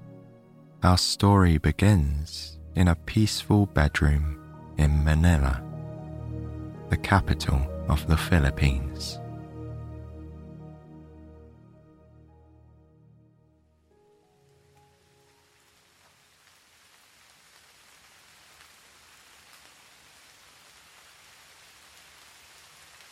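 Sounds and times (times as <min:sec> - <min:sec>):
warm musical drone: 0:00.0 - 0:13.3
speech: 0:00.8 - 0:05.7, 0:06.9 - 0:09.2
gentle rain falling outside a window: 0:14.1 - 0:23.1.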